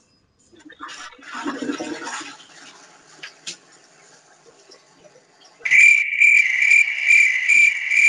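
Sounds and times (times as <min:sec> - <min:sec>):
crickets chirping as a soundboard joke sound effect: 0:05.6 - 0:08.0.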